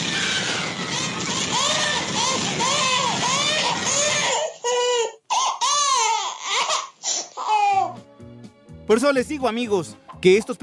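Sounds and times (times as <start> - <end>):
cartoon baby crying: 0.1 - 8.0
speech: 8.9 - 10.6.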